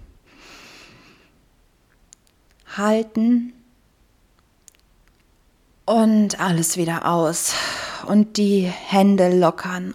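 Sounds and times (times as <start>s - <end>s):
deep breath in through the nose during a guided relaxation exercise: 0.2s - 1.4s
speech: 2.8s - 3.6s, 5.9s - 9.9s.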